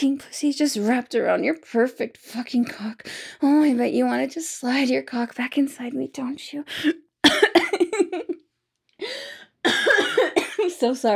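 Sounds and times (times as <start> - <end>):
speech: 0.0 - 8.3, 9.0 - 11.1
person coughing after breathing in while talking: 7.2 - 8.4, 9.6 - 10.8.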